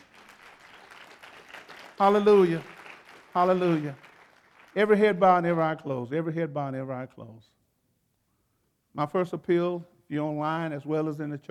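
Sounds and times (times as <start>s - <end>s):
audience clapping hands in praise: 0.0s - 5.0s
speech: 2.0s - 2.7s, 3.4s - 4.0s, 4.8s - 7.5s, 9.0s - 11.4s.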